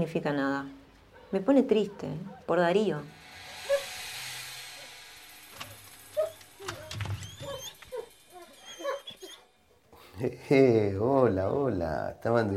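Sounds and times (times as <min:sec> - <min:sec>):
speech: 0:00.0 - 0:03.2, 0:10.2 - 0:12.5
excited dogs whimpering and yipping in greeting: 0:06.1 - 0:09.5.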